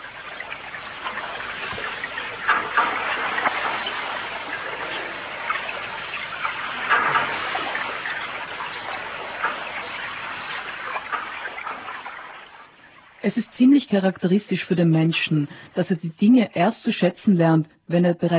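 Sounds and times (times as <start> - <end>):
lake water moving with a rushing lapping texture: 0.0 - 13.3
speech: 13.9 - 18.3.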